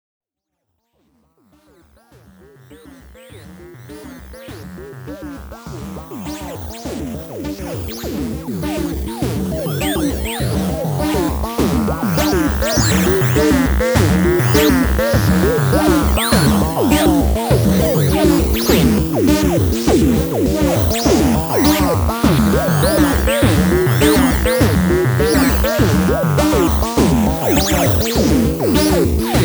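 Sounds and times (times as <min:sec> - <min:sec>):
A100 and MS20 synthesizer sample: 0:08.5 - 0:29.4.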